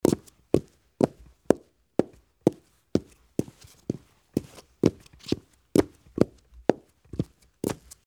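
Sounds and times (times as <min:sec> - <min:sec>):
footsteps in slippers: 0:00.0 - 0:08.0.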